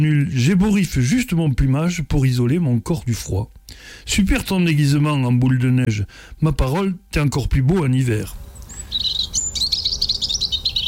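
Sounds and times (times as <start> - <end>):
speech: 0.0 - 9.0
European robin singing: 8.0 - 10.8.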